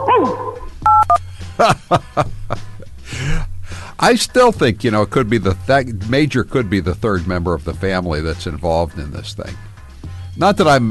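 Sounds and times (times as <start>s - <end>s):
dog barking: 0.0s - 0.6s
dog giving a hoarse yelp: 0.0s - 0.7s
touch-tone phone beeps: 0.9s - 1.2s
speech: 1.6s - 2.3s, 4.0s - 9.7s, 10.4s - 10.9s
laughter: 1.6s - 3.3s.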